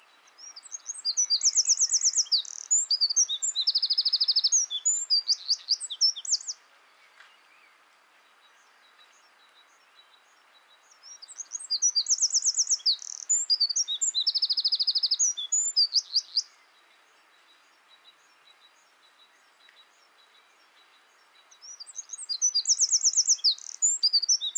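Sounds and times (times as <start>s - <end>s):
Eurasian wren Troglodytes troglodytes singing: 0.3s - 6.6s, 9.8s - 16.6s, 18.4s - 24.5s.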